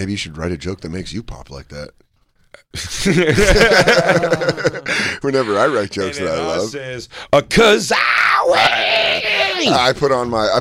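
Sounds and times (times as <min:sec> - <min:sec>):
speech: 0:00.0 - 0:10.6
laughter: 0:02.8 - 0:06.7
man screaming excitedly: 0:04.9 - 0:06.7, 0:07.7 - 0:09.9.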